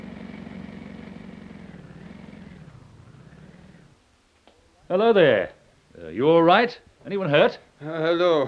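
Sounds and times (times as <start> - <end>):
car engine humming as the car pulls up: 0.0 - 4.2
speech: 4.9 - 8.4.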